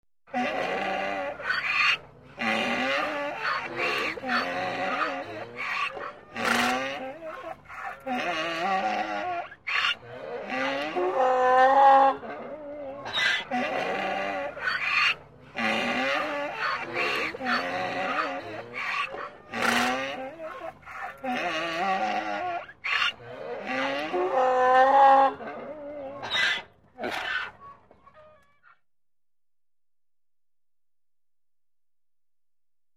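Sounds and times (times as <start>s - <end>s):
cows mooing: 0.3s - 1.6s, 2.4s - 26.2s
donkey braying: 0.3s - 28.8s.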